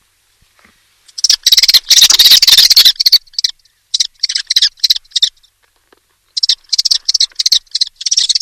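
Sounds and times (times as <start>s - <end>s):
Common Kestrel loud rough repeated calls: 1.1s - 5.6s, 6.2s - 8.3s.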